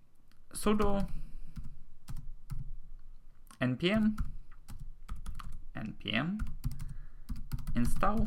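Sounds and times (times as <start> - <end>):
speech: 0.6 - 1.2, 3.6 - 4.3, 5.8 - 6.5, 7.8 - 8.2
typing a command on a computer keyboard: 0.9 - 2.7, 3.5 - 5.6, 6.4 - 8.2.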